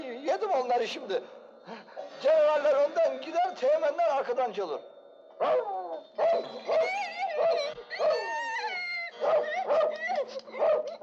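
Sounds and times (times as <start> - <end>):
speech: 0.5 - 8.1
dog barking: 5.4 - 8.4, 9.2 - 11.0.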